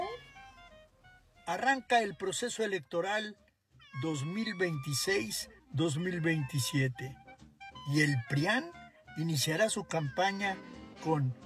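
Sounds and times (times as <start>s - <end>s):
cat meowing: 0.0s - 0.8s, 3.8s - 7.2s, 7.8s - 11.4s
speech: 1.5s - 3.4s, 4.0s - 7.2s, 7.9s - 11.4s.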